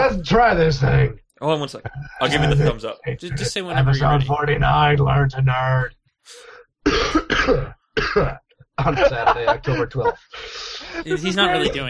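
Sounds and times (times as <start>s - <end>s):
speech: 0.1s - 11.8s
laughter: 2.2s - 4.3s, 8.8s - 11.8s
harsh coughs: 6.9s - 8.4s.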